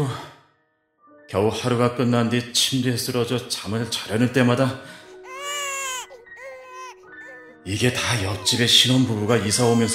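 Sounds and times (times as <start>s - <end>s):
speech: 1.3s - 5.0s, 7.7s - 9.9s
newborn baby crying: 5.0s - 9.9s.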